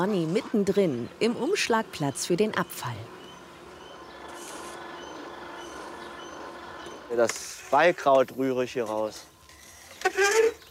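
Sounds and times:
speech: 0.0 - 3.2, 7.1 - 9.3
train rumbling past a railway station by hemp fields in Germany: 0.0 - 7.2
brief high screech of train wheels: 0.0 - 10.7
faint metallic whines of a train: 0.0 - 10.7.

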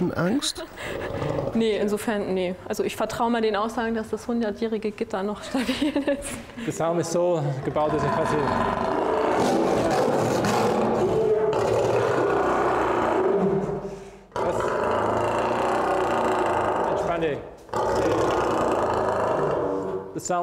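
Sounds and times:
speech: 0.0 - 9.6, 20.3 - 20.4
angry male lion roaring and growling: 7.6 - 20.4.

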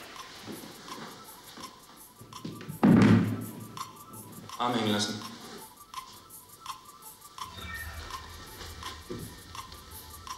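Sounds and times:
wooden chair tipping over backwards onto floor: 2.8 - 3.4
speech: 4.6 - 5.3.

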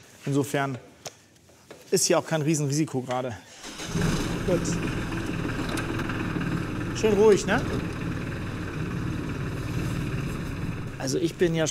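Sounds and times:
speech: 0.2 - 0.9, 1.9 - 5.0, 7.0 - 7.9, 11.0 - 11.7
farm loader tractor engine droning at low speed: 3.6 - 11.7.

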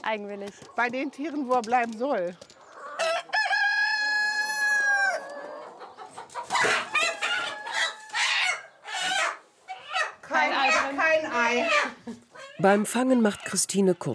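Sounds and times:
speech: 0.0 - 2.6, 12.6 - 14.1
chickens clucking and squawking agitatedly: 2.4 - 14.1
rooster crowing on a farm: 3.0 - 5.6, 6.5 - 9.4.

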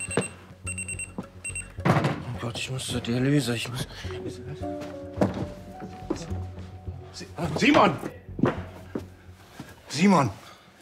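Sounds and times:
electronic alarm clock beeping: 0.0 - 1.8
speech: 2.4 - 5.4, 7.2 - 8.2, 10.0 - 10.4.

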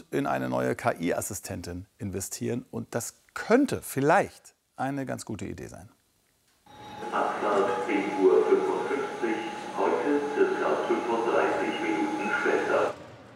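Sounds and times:
speech: 0.1 - 6.0
crowd murmur in a train station hall in Hannover: 7.0 - 13.0.

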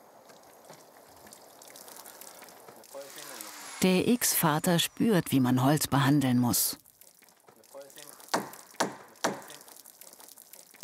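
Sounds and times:
water poured over a cedar wood plank: 0.0 - 3.5, 6.8 - 10.8
speech: 3.0 - 6.8.

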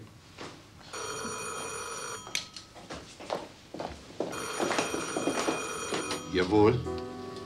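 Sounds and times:
telephone bell ringing late at night: 0.9 - 2.9, 4.3 - 6.9
speech: 6.4 - 7.0.

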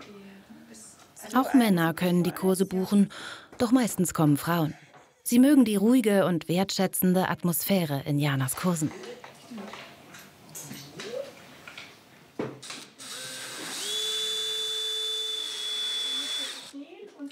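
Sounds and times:
speech: 1.3 - 9.8
electric drill boring into wood with high-pitched whine: 12.6 - 16.8.

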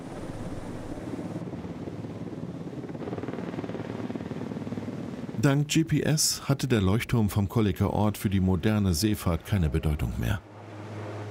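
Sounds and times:
helicopter lifting a heavy load: 0.0 - 5.4, 10.4 - 11.2
faint rush of wind: 0.0 - 11.2
speech: 5.4 - 10.5.

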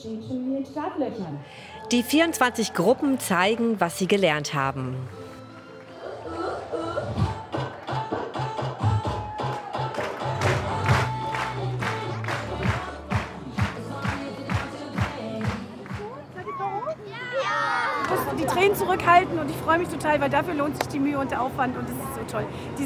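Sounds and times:
speech: 0.0 - 5.2, 18.9 - 22.8
circus audience clapping and cheering: 1.8 - 4.3, 5.0 - 16.2
excited children's voices and shouts: 16.4 - 18.2.

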